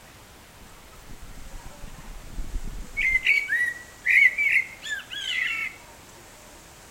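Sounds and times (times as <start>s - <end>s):
blackbird singing: 3.0s - 5.8s.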